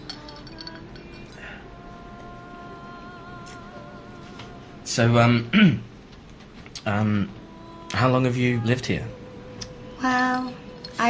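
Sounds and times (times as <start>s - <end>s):
glasses clinking in a toast: 0.0s - 1.5s, 10.0s - 11.0s
speech: 5.0s - 5.9s, 6.8s - 9.2s, 10.0s - 11.0s.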